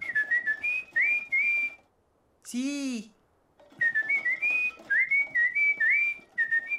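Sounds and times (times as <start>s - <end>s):
person whistling a lively tune: 0.0s - 1.8s, 3.7s - 6.7s
speech: 2.5s - 3.2s.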